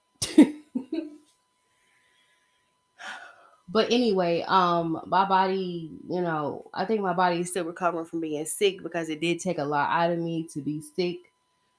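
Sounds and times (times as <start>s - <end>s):
person coughing: 0.2s - 1.0s
speech: 3.7s - 11.3s.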